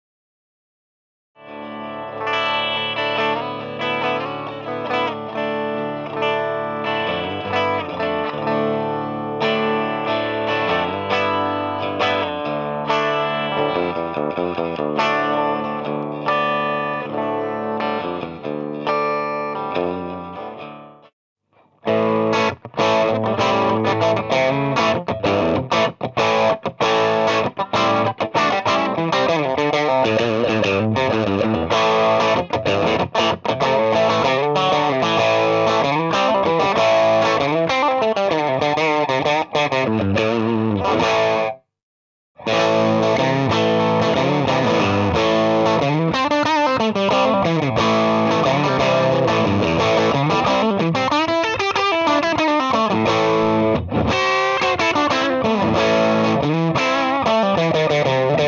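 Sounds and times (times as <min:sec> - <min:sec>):
Ace 25 Tele electric guitar: 0:01.4 - 0:41.6, 0:42.4 - 0:58.4.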